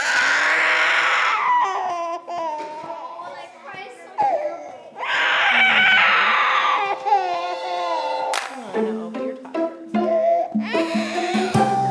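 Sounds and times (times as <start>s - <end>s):
baby screaming and crying: 0.0s - 3.5s, 4.1s - 8.3s, 10.0s - 11.8s.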